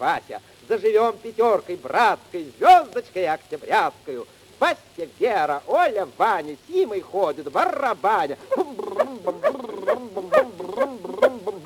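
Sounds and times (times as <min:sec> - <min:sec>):
speech: 0:00.0 - 0:11.6
puppy yapping in high-pitched excited bursts: 0:08.5 - 0:11.6.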